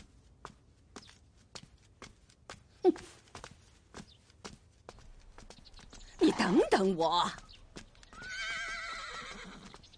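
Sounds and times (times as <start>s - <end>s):
hooves clip-clopping: 0.0s - 9.9s
speech: 2.8s - 3.1s, 6.5s - 7.4s
horse neighing: 8.2s - 9.8s.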